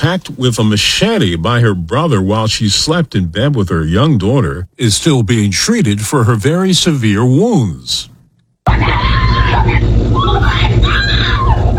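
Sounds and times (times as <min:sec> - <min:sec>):
speech: 0:00.0 - 0:08.1, 0:08.7 - 0:10.6
woman screaming frantically: 0:08.7 - 0:11.7.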